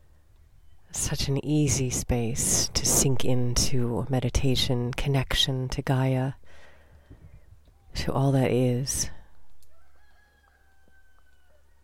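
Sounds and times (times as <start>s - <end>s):
low steady hum: 0.0s - 10.0s
speech: 1.1s - 6.6s, 8.0s - 9.2s
rooster crowing in misty morning air: 9.6s - 11.8s.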